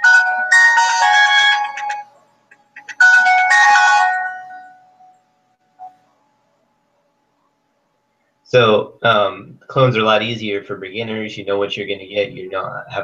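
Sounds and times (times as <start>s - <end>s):
phone ringtone: 0.0s - 2.1s, 2.8s - 5.2s
speech: 8.5s - 13.0s.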